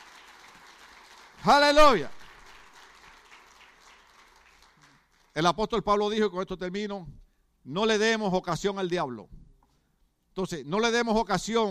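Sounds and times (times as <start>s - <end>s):
audience applauding: 0.0s - 5.3s
speech: 1.4s - 2.2s, 5.4s - 9.4s, 10.4s - 11.6s.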